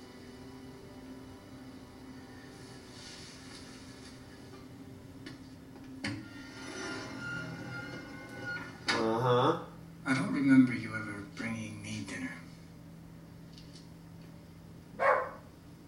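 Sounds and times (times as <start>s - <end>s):
low steady hum: 0.0s - 15.8s
dogs barking outdoors: 15.0s - 15.5s.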